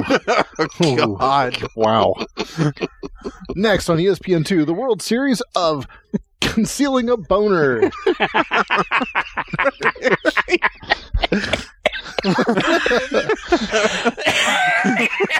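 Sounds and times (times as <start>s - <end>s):
coughing and throat clearing: 0.0s - 3.6s, 9.7s - 15.3s
breathy laughter: 0.0s - 3.8s, 7.8s - 15.3s
speech: 0.0s - 15.3s.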